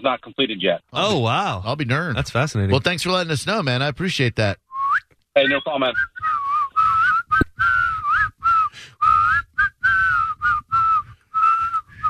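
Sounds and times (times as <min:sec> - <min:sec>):
speech: 0:00.0 - 0:04.6, 0:05.4 - 0:06.3
person whistling through teeth: 0:04.7 - 0:05.2, 0:05.9 - 0:12.0.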